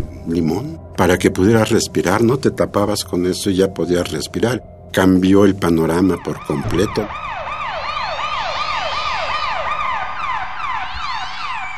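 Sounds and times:
speech: 0.3s - 7.3s
several riot police sirens wailing: 5.9s - 11.7s.

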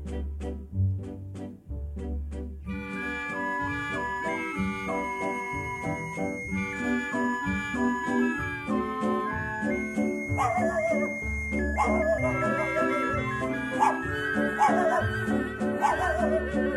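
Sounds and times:
steady instrumental music: 0.0s - 16.7s
dog barking and yelping: 10.3s - 11.1s, 11.8s - 16.6s.

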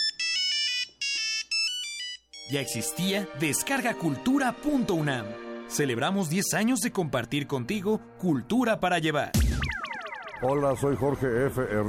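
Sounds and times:
old mobile phone electronic ringtone melody: 0.0s - 3.1s
speech: 2.5s - 9.8s, 10.4s - 11.8s.

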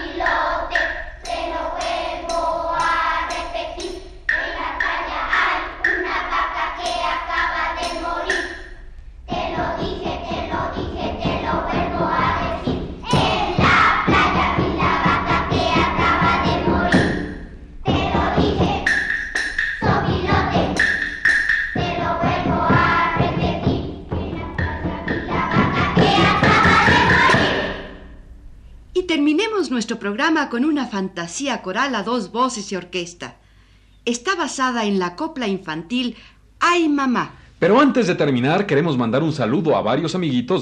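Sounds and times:
children playing huehuetl drums: 0.0s - 28.1s
speech: 29.9s - 33.4s, 34.1s - 40.6s.

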